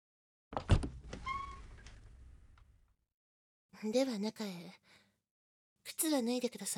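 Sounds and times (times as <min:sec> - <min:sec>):
squeaking door hinge: 0:00.7 - 0:01.9
speech: 0:03.8 - 0:05.0, 0:05.8 - 0:06.7.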